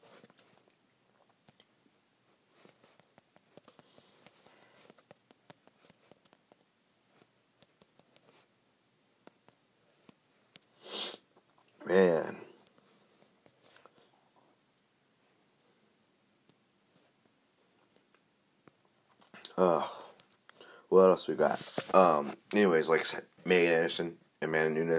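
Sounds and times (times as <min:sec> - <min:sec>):
soft clicks and rustles: 0:00.0 - 0:08.5, 0:09.1 - 0:11.8, 0:12.5 - 0:15.4, 0:16.4 - 0:20.6, 0:21.4 - 0:22.6
speech: 0:21.0 - 0:24.9.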